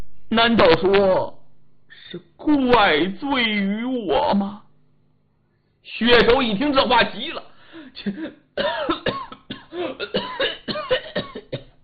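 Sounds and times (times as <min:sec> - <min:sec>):
speech: 0:00.3 - 0:01.4, 0:02.1 - 0:04.6, 0:05.8 - 0:09.2
man coughing hard and wheezing: 0:07.7 - 0:11.8.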